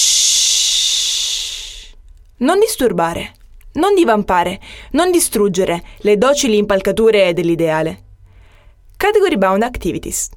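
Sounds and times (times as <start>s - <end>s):
long shushing hiss likely made by a voice: 0.0s - 2.0s
speech: 2.4s - 8.0s, 9.0s - 10.3s.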